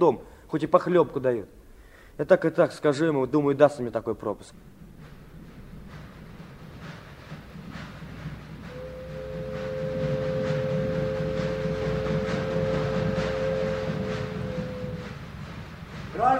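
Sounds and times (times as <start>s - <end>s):
speech: 0.0s - 1.6s, 2.2s - 4.8s
train pulling into a station: 3.2s - 16.3s
steady high tone: 8.6s - 15.5s.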